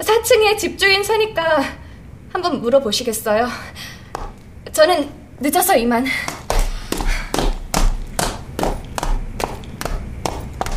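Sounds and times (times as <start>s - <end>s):
speech: 0.0s - 1.8s, 2.4s - 3.9s, 4.8s - 6.4s
hurried footsteps going down a staircase: 4.1s - 4.5s, 6.0s - 10.7s.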